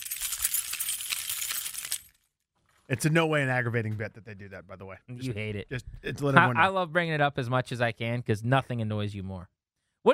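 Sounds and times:
keys jingling as they are picked up: 0.0s - 2.3s
speech: 2.9s - 10.1s.

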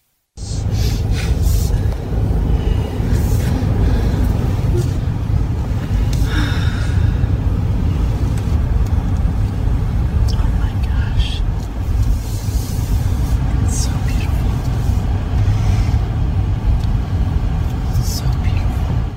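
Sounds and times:
car engine and road rumble inside a moving car following a hearse: 0.4s - 19.1s.

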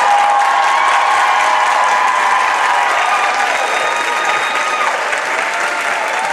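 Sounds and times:
audience clapping: 0.0s - 6.3s.

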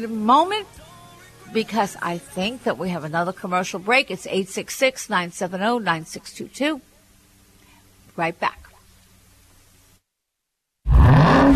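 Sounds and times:
speech: 0.0s - 0.8s, 1.5s - 6.9s, 8.2s - 8.6s
supercharged V8 engine revving: 10.9s - 11.5s.

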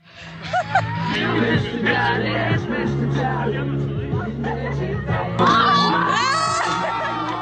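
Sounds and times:
laughter: 0.2s - 1.6s, 4.3s - 7.4s
crowd of final-year upper-secondary students cheering and shouting at school celebration: 0.3s - 3.4s, 4.1s - 7.4s
speech: 1.8s - 5.2s
excited whoops and screams of students: 5.4s - 7.4s.

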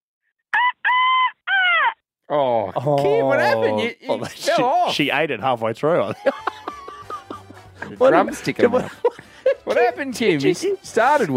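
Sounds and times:
woman imitating a rooster crowing: 0.6s - 2.0s
speech: 2.3s - 6.5s, 7.9s - 11.3s
laughter: 2.4s - 5.1s, 5.9s - 11.3s.

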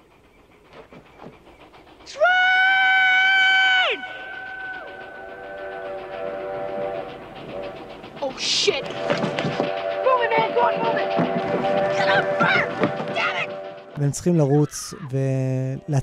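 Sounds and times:
train approaching on railway tracks: 0.0s - 16.0s
speech: 2.1s - 2.3s, 14.0s - 16.0s
train horn blasting: 4.8s - 13.9s.

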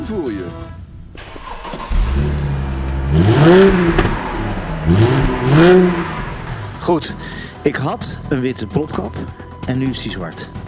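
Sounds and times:
speech: 0.1s - 0.8s, 6.9s - 10.6s
long-unused car engine cranking, idling and revving: 1.1s - 7.6s.

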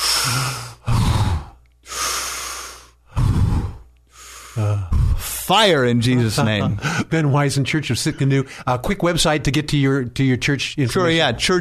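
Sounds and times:
deep breaths taken during a church prayer: 0.0s - 5.4s
speech: 0.2s - 0.6s, 5.5s - 11.5s
laughter: 6.0s - 7.1s.

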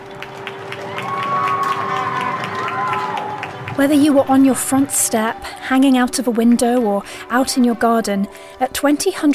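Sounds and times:
crowd clapping in a street for frontline medical workers: 0.0s - 6.8s
whooping cheers: 0.7s - 3.8s, 4.6s - 5.6s
speech: 3.8s - 9.3s.

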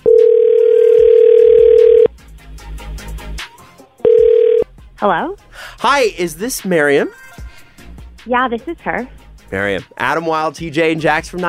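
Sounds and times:
telephone dial tone: 0.0s - 2.1s, 4.1s - 4.6s
speech: 5.0s - 7.2s, 8.2s - 11.4s.

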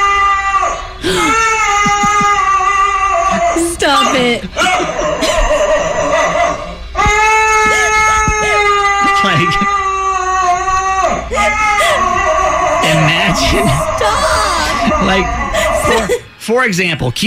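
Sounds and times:
dog howling with a human-like tone: 0.0s - 16.3s
people laughing: 1.0s - 2.6s, 3.3s - 6.8s, 7.6s - 9.8s, 12.8s - 16.4s
speech: 15.0s - 15.4s, 16.0s - 17.2s.

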